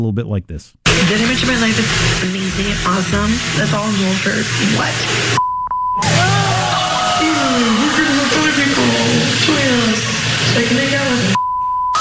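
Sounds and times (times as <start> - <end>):
speech: 0.0 - 6.1
heavy noise: 0.9 - 5.4, 6.0 - 11.4
steady electronic censor beep: 5.4 - 6.0, 11.3 - 11.9.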